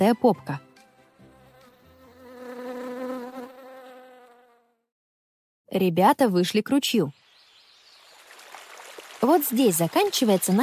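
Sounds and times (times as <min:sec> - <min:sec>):
speech: 0:00.0 - 0:00.6, 0:05.7 - 0:07.2, 0:09.2 - 0:10.6
fat bumblebee buzzing loudly burrowing into a flower: 0:01.2 - 0:04.9.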